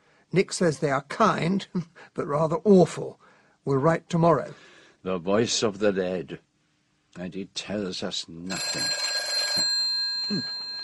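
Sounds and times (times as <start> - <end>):
speech: 0.3 - 6.5, 7.2 - 9.0, 10.3 - 10.6
telephone bell ringing: 8.5 - 10.8.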